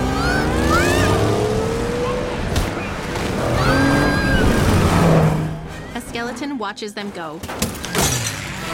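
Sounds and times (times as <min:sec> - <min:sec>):
go-kart engine driving out of a garage: 0:00.0 - 0:05.9, 0:07.9 - 0:08.7
speech: 0:06.3 - 0:08.2.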